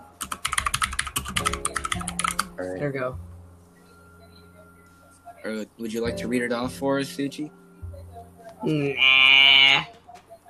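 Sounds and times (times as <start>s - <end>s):
typing on a computer keyboard: 0.2s - 2.5s
speech: 2.6s - 3.3s, 5.4s - 7.6s, 8.6s - 10.0s.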